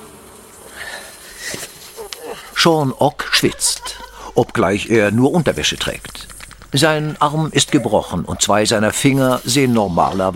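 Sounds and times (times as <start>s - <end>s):
wasps buzzing: 0.0s - 10.3s
faint clicks: 1.5s - 2.4s, 5.4s - 7.8s
laughter: 2.1s - 8.9s
speech: 2.4s - 10.3s.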